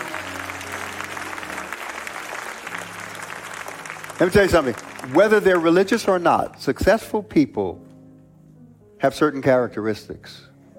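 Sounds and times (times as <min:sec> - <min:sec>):
large church audience applauding as a hand clap offering: 0:00.0 - 0:06.6
speech: 0:04.2 - 0:07.8, 0:09.0 - 0:10.5.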